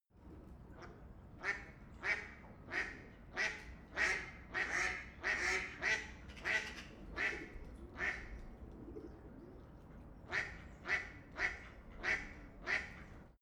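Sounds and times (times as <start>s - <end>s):
low steady background rumble: 0.2s - 13.4s
duck quacking harshly on a canal in Europe: 1.4s - 7.4s, 10.3s - 12.9s.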